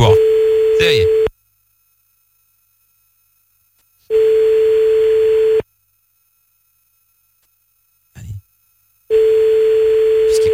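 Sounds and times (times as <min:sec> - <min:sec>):
speech: 0:00.0 - 0:00.2, 0:00.8 - 0:01.2
ringback tone on an outgoing telephone call: 0:00.0 - 0:01.3, 0:04.1 - 0:05.6, 0:09.1 - 0:10.5.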